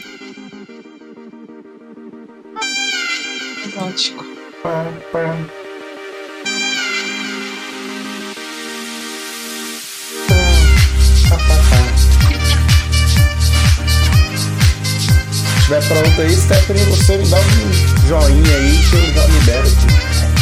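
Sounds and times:
saxophone music: 0.0s - 1.2s, 2.6s - 20.3s
speech: 3.8s - 5.6s, 15.7s - 20.2s
heavy bass beat: 10.1s - 20.3s.

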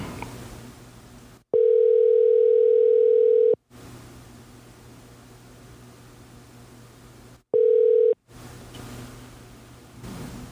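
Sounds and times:
telephone dial tone while placing a call: 1.6s - 3.6s, 7.6s - 8.2s.

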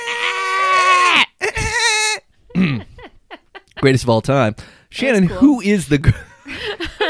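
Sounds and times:
person imitating a screaming goat: 0.0s - 2.3s
laughter: 2.5s - 4.0s, 6.1s - 7.0s
speech: 3.8s - 6.8s.

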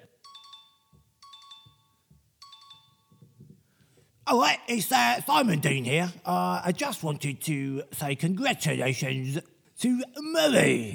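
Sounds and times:
phone ringtone: 0.0s - 3.4s
speech: 4.3s - 10.9s.

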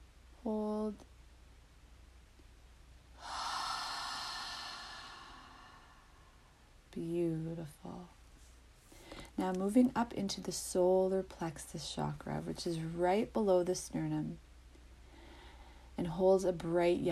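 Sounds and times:
speech: 0.4s - 1.1s, 7.0s - 8.2s, 9.4s - 14.4s, 16.0s - 17.0s
long deep breath in during a guided meditation: 3.2s - 6.6s, 15.0s - 15.9s.

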